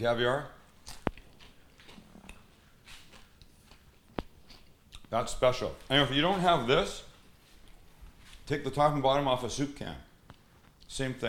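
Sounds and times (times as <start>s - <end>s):
speech: 0.0s - 0.6s, 5.1s - 7.1s, 8.5s - 10.1s, 10.9s - 11.2s
quiet rustling chewing of food: 0.7s - 5.2s.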